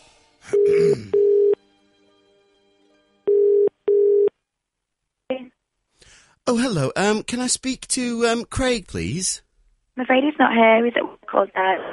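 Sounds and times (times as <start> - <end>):
phone ringing tone after dialing: 0.6 - 1.6, 3.3 - 4.3
speech: 6.5 - 9.4, 10.0 - 11.9.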